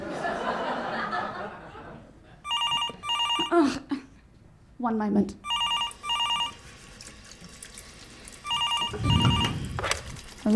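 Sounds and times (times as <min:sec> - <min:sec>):
laughter: 0:00.0 - 0:02.4
telephone ringing in trilling electronic bursts: 0:02.5 - 0:03.7, 0:05.4 - 0:06.8, 0:08.4 - 0:10.2
speech: 0:03.4 - 0:04.0, 0:04.8 - 0:05.5
running water from a sink splashing: 0:05.5 - 0:10.5.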